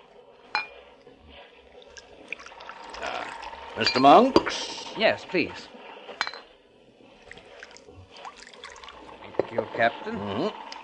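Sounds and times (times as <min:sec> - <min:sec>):
drink pouring into a glass: 0:01.9 - 0:03.9, 0:07.3 - 0:09.5
glass clink: 0:03.8 - 0:04.2, 0:06.2 - 0:06.4
speech: 0:03.8 - 0:05.8, 0:09.5 - 0:10.7.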